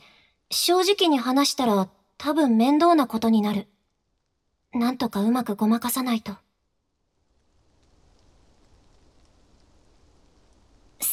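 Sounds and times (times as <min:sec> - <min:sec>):
speech: 0:00.5 - 0:03.7, 0:04.7 - 0:06.4
steady rain falling at night in a park: 0:07.2 - 0:11.1.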